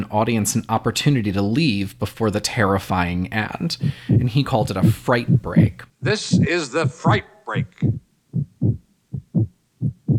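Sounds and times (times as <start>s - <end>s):
speech: 0.0s - 8.0s
heartbeat sound effect from a horror film: 3.7s - 10.1s.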